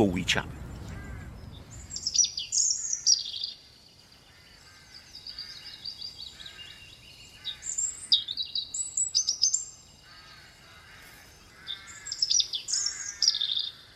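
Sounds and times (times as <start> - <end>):
speech: 0.0 - 0.6
several songbirds singing outdoors: 0.0 - 13.9.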